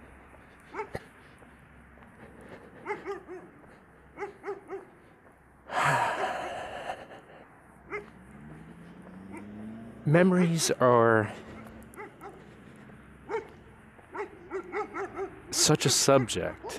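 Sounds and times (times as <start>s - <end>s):
dogs barking: 0.4s - 1.5s, 2.2s - 5.2s, 7.8s - 8.3s, 9.0s - 9.7s, 11.3s - 16.7s
speech: 10.1s - 11.5s, 15.7s - 16.7s.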